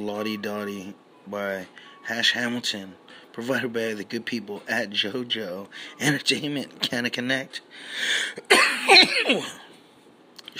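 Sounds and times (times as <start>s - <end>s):
speech: 0.0s - 9.6s
harsh raspy coughing: 8.3s - 9.7s.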